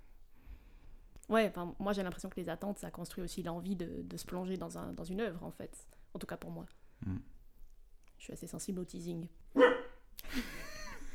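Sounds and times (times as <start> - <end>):
speech: 1.3 - 7.4, 8.2 - 10.7
dog barking: 9.6 - 10.0.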